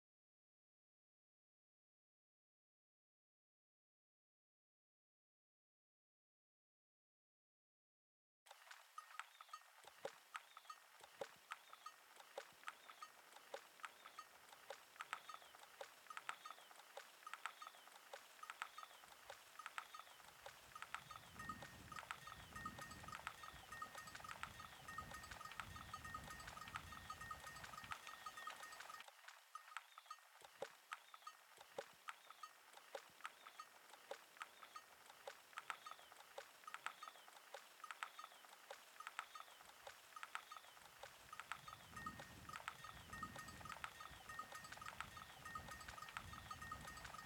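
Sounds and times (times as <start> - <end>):
wind: 8.5 - 47.2
birds: 9.3 - 29.0, 30.9 - 47.2.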